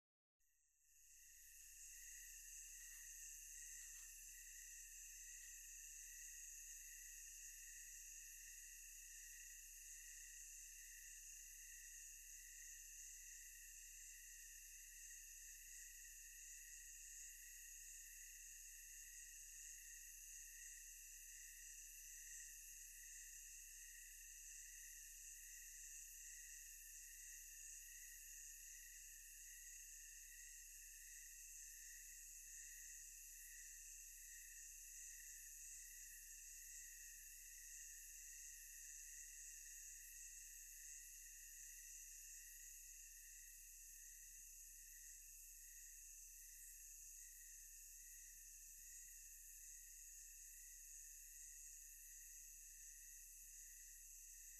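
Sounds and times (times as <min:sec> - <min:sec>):
thick tonal insect chorus: 0:01.0 - 0:54.5.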